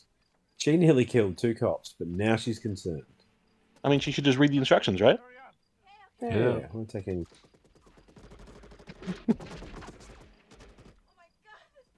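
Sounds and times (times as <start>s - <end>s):
speech: 0.6s - 3.2s, 3.8s - 5.3s, 6.2s - 7.5s, 9.0s - 9.6s
video game machine gun fire: 7.3s - 11.0s.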